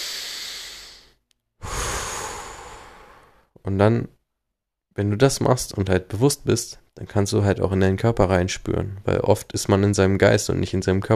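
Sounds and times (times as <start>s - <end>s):
long airy deep inhale: 0.0s - 3.5s
loud breathy exhale: 0.0s - 3.5s
speech: 3.6s - 4.2s, 5.0s - 11.1s.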